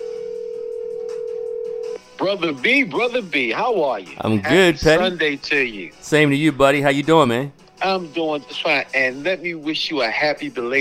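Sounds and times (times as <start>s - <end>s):
telephone dial tone: 0.0s - 2.0s
speech: 2.2s - 10.7s.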